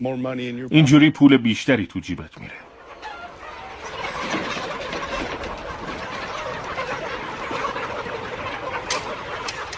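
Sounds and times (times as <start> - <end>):
speech: 0.0 - 2.7
many broiler chickens clucking and chirping inside an enclosed poultry house: 1.7 - 9.7.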